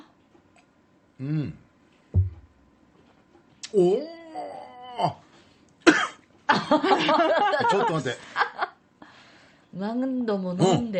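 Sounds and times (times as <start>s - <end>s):
speech: 1.2s - 1.6s, 3.7s - 4.2s, 5.0s - 5.2s, 6.6s - 8.4s, 9.8s - 10.9s
person coughing after sipping a sweet grape-scented drink: 5.8s - 6.2s
laughter: 6.5s - 8.7s.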